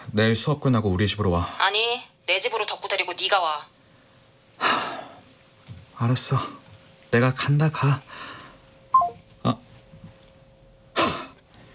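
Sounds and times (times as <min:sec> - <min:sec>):
speech: 0:00.1 - 0:03.7, 0:06.0 - 0:08.3, 0:09.4 - 0:09.6
short descending electronic phone beep: 0:09.0 - 0:09.2.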